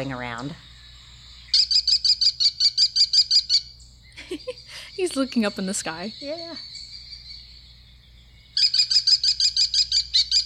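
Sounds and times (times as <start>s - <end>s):
speech: 0.0s - 0.7s, 4.3s - 6.7s
American kestrel shrill calls: 0.7s - 4.2s, 5.0s - 10.4s.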